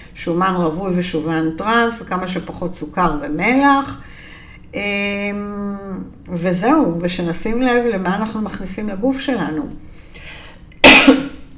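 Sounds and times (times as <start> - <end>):
speech: 0.2 - 4.1, 4.7 - 9.9
woman coughing after running out of air while talking: 10.8 - 11.4.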